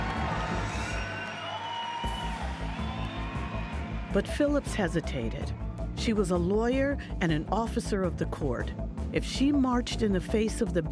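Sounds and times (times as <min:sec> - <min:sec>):
large crowd shouting and cheering in approval: 0:00.0 - 0:06.0
speech: 0:04.2 - 0:10.9.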